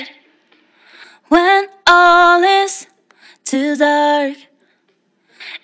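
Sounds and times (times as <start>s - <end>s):
female vocal with telephone effect and slapback echo: 1.3s - 2.9s, 3.5s - 4.4s.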